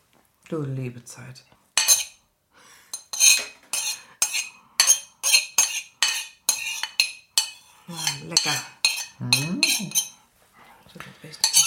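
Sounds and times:
speech: 0.5 - 1.6, 8.3 - 10.1, 10.9 - 11.6
utensil scraping and knocking against a mixing bowl during Christmas baking: 1.8 - 2.2, 2.9 - 10.2, 11.3 - 11.6.

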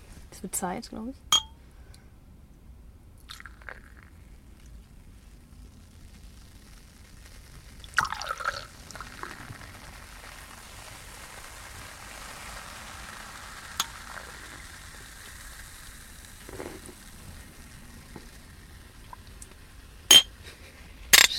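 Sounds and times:
speech: 0.3 - 1.3
glasses clinking in a toast: 1.3 - 1.6, 20.1 - 20.3, 21.2 - 21.3
champagne fizzing: 3.2 - 21.2
champagne pouring: 3.2 - 21.3.

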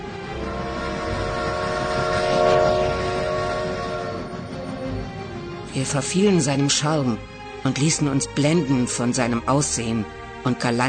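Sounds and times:
steam train rumbling past: 0.0 - 9.8
steam train sustained horn: 0.1 - 4.8
speech: 5.8 - 10.8.

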